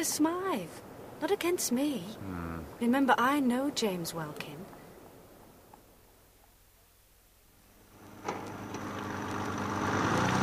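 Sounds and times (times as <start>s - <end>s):
speech: 0.0s - 4.6s
car engine running: 8.0s - 10.4s.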